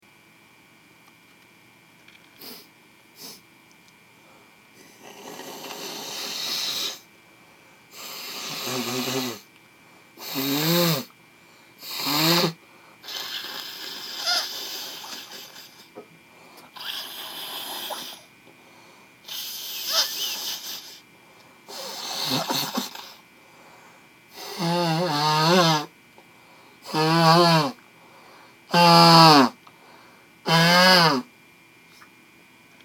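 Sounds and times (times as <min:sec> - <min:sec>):
man with hay fever blowing congested nose: 0:02.4 - 0:03.4, 0:04.8 - 0:07.0, 0:07.9 - 0:09.5, 0:10.2 - 0:11.1, 0:11.8 - 0:15.9, 0:16.7 - 0:18.3, 0:19.2 - 0:21.0, 0:21.7 - 0:23.2, 0:24.3 - 0:25.9, 0:26.8 - 0:31.3.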